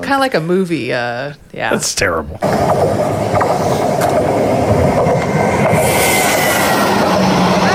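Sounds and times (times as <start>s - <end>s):
speech: 0.1s - 4.4s
train rumbling past: 2.4s - 7.7s.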